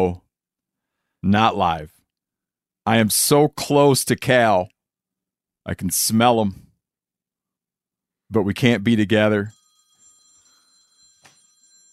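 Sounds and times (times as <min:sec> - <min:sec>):
speech: 0:01.2 - 0:02.0, 0:02.9 - 0:04.8, 0:05.6 - 0:06.6, 0:08.3 - 0:09.6
telephone ringing: 0:09.5 - 0:11.9.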